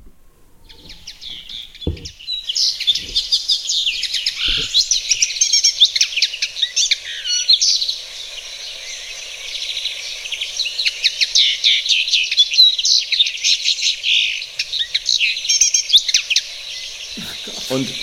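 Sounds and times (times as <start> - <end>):
faint low knocks: 0.0 - 2.3, 2.9 - 5.2
slender goldfinch-like finch singing high twittering phrases: 0.6 - 18.0.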